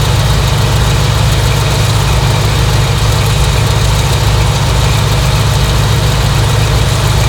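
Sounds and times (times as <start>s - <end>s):
L2 engine idling: 0.0s - 7.2s.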